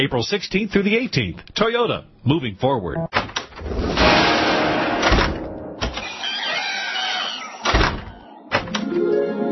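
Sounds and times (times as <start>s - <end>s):
speech: 0.0s - 4.3s
doors opening and closing: 3.1s - 4.0s, 5.0s - 9.4s.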